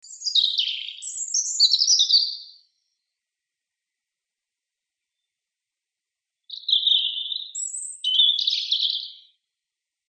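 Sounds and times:
European robin Erithacus rubecula singing: 0.0 - 2.7, 6.5 - 9.4.

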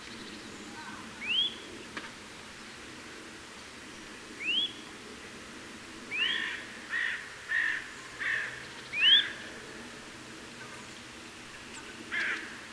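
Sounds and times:
gentle background hiss: 0.0 - 12.7
Eurasian nuthatch Sitta europaea giving upslurred whistled calls: 1.2 - 1.6, 4.4 - 4.8, 8.9 - 9.4.

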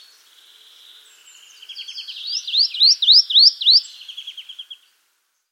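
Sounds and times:
marsh tit (Poecile palustris) calling: 1.7 - 4.8.

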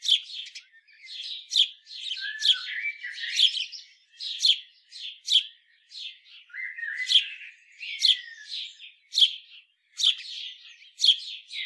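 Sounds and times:
house sparrow Passer domesticus chirping: 0.0 - 11.6.

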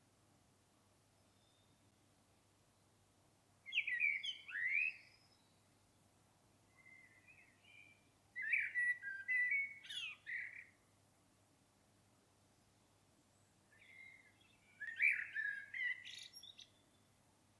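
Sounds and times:
Common blackbird Turdus merula singing: 3.7 - 5.6, 6.8 - 10.8, 13.7 - 17.1.

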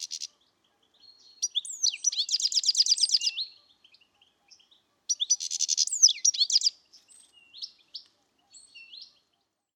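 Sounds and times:
European goldfinch Carduelis carduelis chirping and twittering: 0.0 - 3.6, 4.5 - 6.8.

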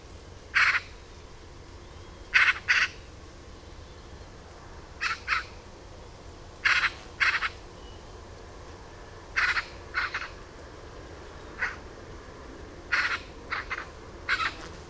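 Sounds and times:
Eurasian magpie Pica pica harsh chattering calls: 0.6 - 0.9, 2.3 - 3.0, 5.0 - 5.5, 6.6 - 7.6, 9.4 - 10.3, 12.9 - 14.6.

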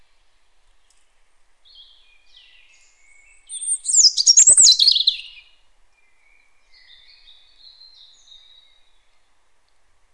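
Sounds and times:
European robin Erithacus rubecula song phrase: 1.6 - 9.3.

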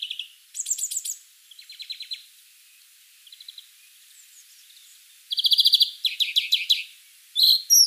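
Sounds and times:
European greenfinch giving rapid twittering trills, Chloris chloris: 0.0 - 7.8.

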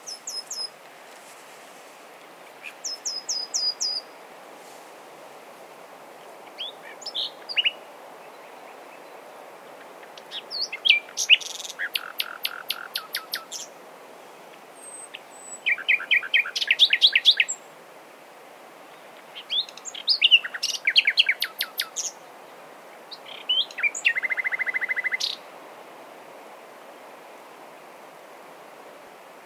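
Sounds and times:
Common nightingale Luscinia megarhynchos singing: 0.0 - 0.8, 2.6 - 4.2, 6.4 - 9.2, 10.0 - 13.8, 14.8 - 17.7, 18.9 - 22.3, 23.1 - 25.5
background hiss: 0.0 - 29.4.

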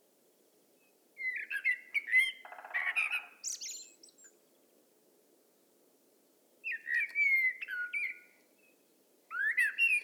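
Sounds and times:
common blackbird Turdus merula singing: 1.2 - 4.3, 6.6 - 10.0.

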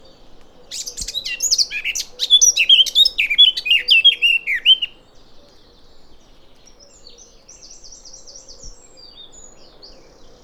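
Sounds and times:
Eurasian blackcap Sylvia atricapilla warbling: 0.7 - 4.9.

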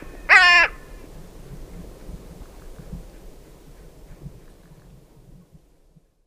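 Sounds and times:
carrion crow Corvus corone cawing: 0.0 - 1.0
low background noise: 0.0 - 6.2.

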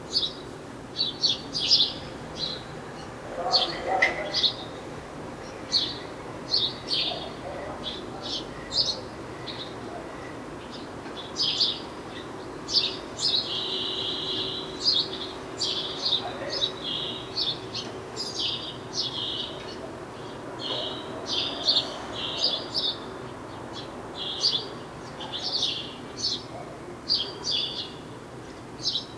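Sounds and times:
house sparrow Passer domesticus chirping: 0.1 - 0.4, 1.0 - 4.8, 5.4 - 9.8, 10.6 - 28.1, 28.8 - 29.1.

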